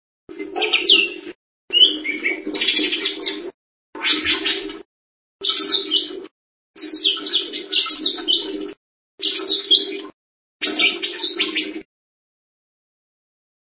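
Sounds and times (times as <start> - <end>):
bird song twittering: 0.6 - 4.8, 5.4 - 6.2, 6.8 - 11.8.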